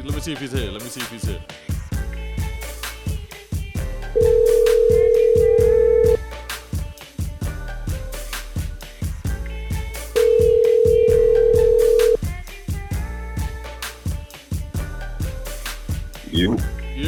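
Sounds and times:
speech: 0.0 - 1.7, 16.4 - 16.8
busy music bed: 0.0 - 17.0
outgoing phone call ringback tones: 4.2 - 6.2, 10.2 - 12.2.

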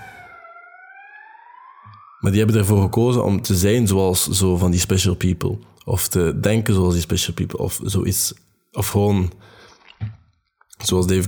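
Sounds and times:
ambulance siren wailing: 0.0 - 3.6
speech: 2.2 - 9.6, 10.8 - 11.2.

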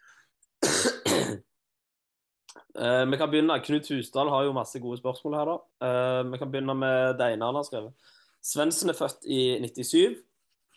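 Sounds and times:
person coughing and clearing throat: 0.6 - 1.5
speech: 2.8 - 10.3.

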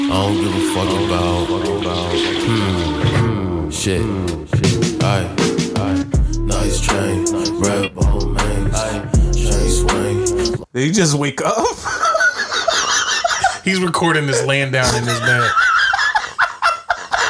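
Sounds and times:
rap track playing: 0.1 - 10.7
booming bass and heavier beat of a rap track: 2.5 - 10.6
laughter: 11.4 - 17.2
speech: 13.7 - 15.6.

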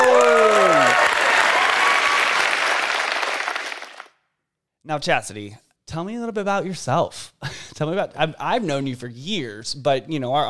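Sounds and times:
audience applauding: 0.0 - 4.1
speech: 4.9 - 10.4.

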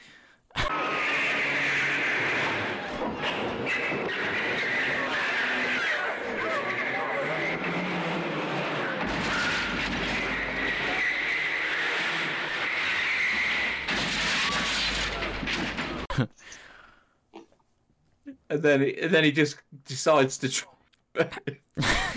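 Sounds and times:
indistinct voices and commotion: 0.6 - 12.6
BMW engine revving in a garage: 0.7 - 14.6
BMW tires screeching while drifting in a garage: 0.7 - 16.1
BMW ramming into people in a garage: 0.8 - 16.1
speech: 18.5 - 22.1.

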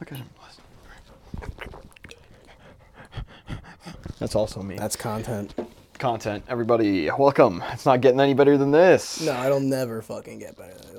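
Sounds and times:
dog panting heavily: 0.6 - 5.6
speech: 4.2 - 10.8.

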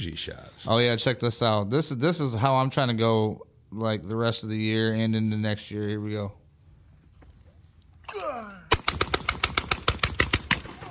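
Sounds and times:
speech: 0.0 - 6.4
rapid gunfire from a semi-automatic 12-gauge shotgun: 8.7 - 10.8.

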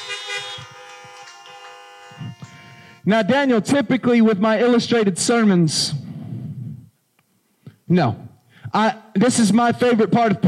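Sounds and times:
car horns honking as applause: 0.0 - 3.1
speech: 3.1 - 6.0, 7.9 - 10.4.

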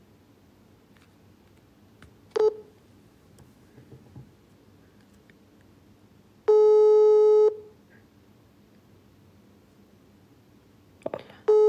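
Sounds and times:
phone call tone over a speakerphone: 6.5 - 7.7, 11.5 - 11.6.

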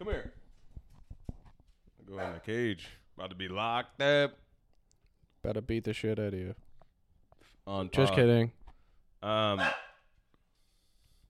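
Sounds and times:
dog barking: 2.1 - 2.5, 9.6 - 10.1
speech: 2.4 - 4.4, 5.4 - 6.6, 7.7 - 8.6, 9.2 - 9.8.

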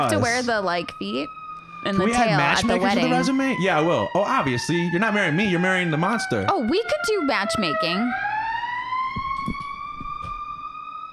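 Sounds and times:
speech: 0.0 - 8.3
siren wailing outside: 0.0 - 11.1
dull low thumps: 9.1 - 10.4.

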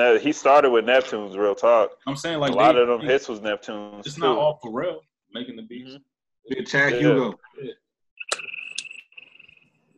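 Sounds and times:
speech: 0.0 - 7.8
crickets trilling loudly: 8.2 - 9.8.

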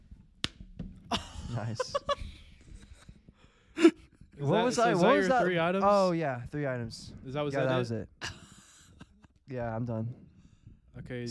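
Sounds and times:
hand slapping knee: 0.4 - 0.7
person making voiced laugh-like sounds: 1.1 - 2.4
speech: 1.6 - 2.2, 4.4 - 8.3, 9.5 - 10.3, 11.0 - 11.3.

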